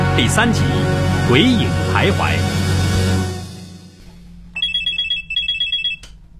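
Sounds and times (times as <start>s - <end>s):
speech: 0.2s - 2.4s
telephone ringing with an electronic ringtone: 4.6s - 6.1s.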